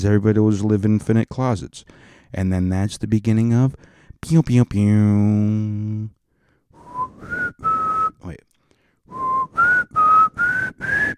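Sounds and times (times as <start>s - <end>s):
speech: 0.0s - 6.2s, 8.2s - 8.5s
person whistling a slow eerie TV theme tune: 6.8s - 8.2s, 9.1s - 11.1s.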